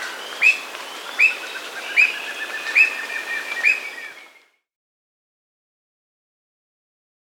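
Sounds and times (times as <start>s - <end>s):
squirrel cuckoo calling sharp clipped whistled notes in Peru: 0.4s - 4.3s.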